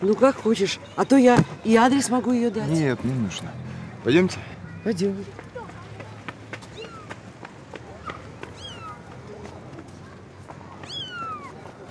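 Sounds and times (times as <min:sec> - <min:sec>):
speech: 0:00.0 - 0:05.4
voices: 0:00.0 - 0:11.8
cat meowing while dragged into the sand by children: 0:10.8 - 0:11.5.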